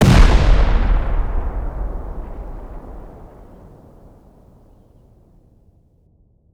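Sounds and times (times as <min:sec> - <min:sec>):
C4 explosion: 0:00.0 - 0:04.2.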